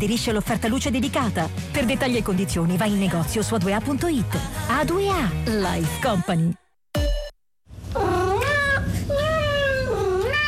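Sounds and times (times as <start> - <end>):
speech: 0.0 - 6.6
cat meowing in long wavering cries: 7.9 - 10.4.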